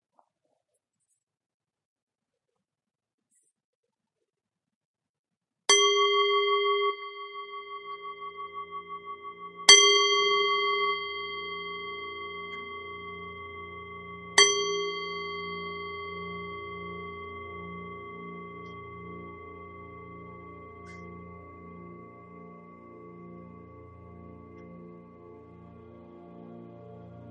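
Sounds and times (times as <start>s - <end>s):
singing bowl struck to begin a meditation: 5.7s - 25.8s.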